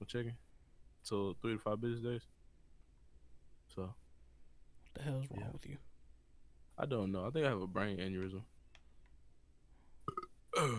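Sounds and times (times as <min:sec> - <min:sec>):
speech: 0:00.0 - 0:00.4, 0:01.0 - 0:02.4, 0:03.7 - 0:04.0, 0:05.0 - 0:05.9, 0:06.8 - 0:08.5, 0:10.1 - 0:10.7
loud rough drawn-out burp: 0:10.0 - 0:10.7
short stuttering gulps: 0:10.0 - 0:10.7.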